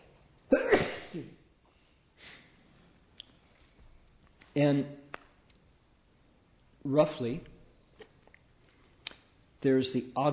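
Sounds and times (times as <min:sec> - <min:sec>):
person sneezing: 0:00.5 - 0:01.4
breathy sniff: 0:01.7 - 0:02.8
speech: 0:04.6 - 0:05.0, 0:06.8 - 0:07.5, 0:09.6 - 0:10.3.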